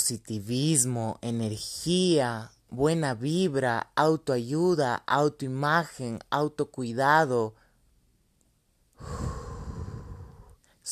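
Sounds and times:
speech: 0:00.1 - 0:07.6, 0:09.0 - 0:09.4
deep conscious breath in and out: 0:09.0 - 0:10.8.

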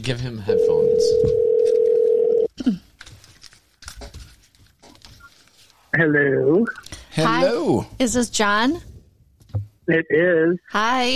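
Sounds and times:
speech: 0:00.0 - 0:01.9, 0:02.6 - 0:02.8, 0:06.0 - 0:08.9, 0:09.9 - 0:11.1
low noise: 0:00.0 - 0:11.1
outgoing phone call ringing tone: 0:00.5 - 0:02.5.

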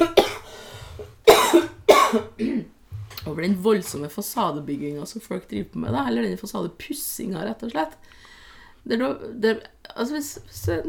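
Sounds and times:
loud harsh cough: 0:00.0 - 0:00.5, 0:01.2 - 0:02.7
speech: 0:03.4 - 0:10.8.

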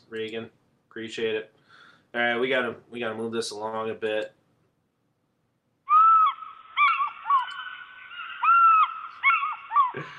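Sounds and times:
speech: 0:00.1 - 0:04.4, 0:10.0 - 0:10.1
eagle call sound effect resembling a seagull: 0:05.9 - 0:10.0
laughter: 0:09.8 - 0:10.1.

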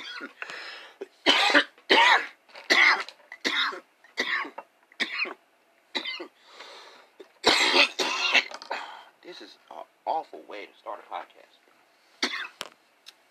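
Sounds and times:
smoker coughing in harsh bursts at a desk in a bedroom: 0:00.0 - 0:00.4, 0:01.2 - 0:05.4, 0:07.2 - 0:09.0, 0:12.2 - 0:12.6.

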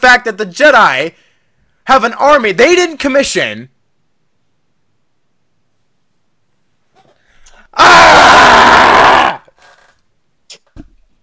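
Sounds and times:
speech: 0:00.0 - 0:01.2, 0:01.9 - 0:03.7, 0:07.8 - 0:08.8
breathing: 0:01.1 - 0:01.8, 0:07.1 - 0:07.7
person yelling in frustration: 0:07.8 - 0:09.4.

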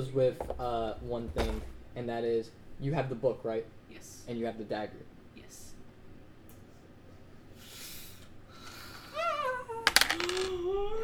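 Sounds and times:
speech: 0:00.0 - 0:05.7
steady hum: 0:00.0 - 0:11.0
dice rattling and clattering across a hard table: 0:09.9 - 0:10.6.

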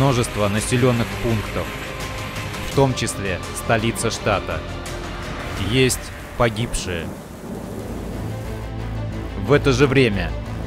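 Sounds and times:
speech: 0:00.0 - 0:01.8, 0:02.8 - 0:04.8, 0:05.6 - 0:07.2, 0:09.5 - 0:10.4
heavy rain during downpours in northern Telangana state India: 0:00.0 - 0:09.4
deep continuous rumble of thunder: 0:05.1 - 0:09.4.

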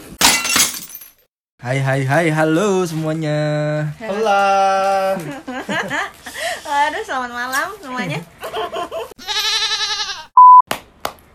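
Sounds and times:
speech: 0:01.6 - 0:09.1
laughter: 0:05.0 - 0:06.4, 0:08.4 - 0:09.2
wavering sheep-like bleats: 0:09.2 - 0:10.3
short electronic beep: 0:10.4 - 0:10.6.

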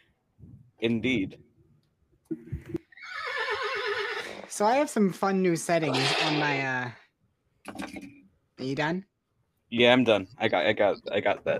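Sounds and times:
speech: 0:00.8 - 0:01.5, 0:04.6 - 0:07.0, 0:08.6 - 0:09.1, 0:09.7 - 0:11.5
horse whinny: 0:02.8 - 0:04.5, 0:05.9 - 0:06.6
horse snort: 0:05.9 - 0:06.6.

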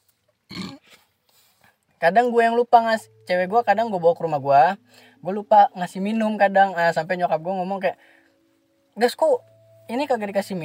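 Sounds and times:
low guttural burp: 0:00.5 - 0:01.0
speech: 0:02.0 - 0:08.2, 0:09.0 - 0:10.6.

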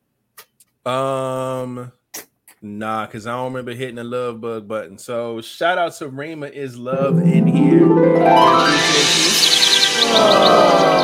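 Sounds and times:
speech: 0:00.8 - 0:02.0, 0:02.6 - 0:09.4, 0:10.1 - 0:11.0
high bright bird chirps: 0:08.7 - 0:11.0.

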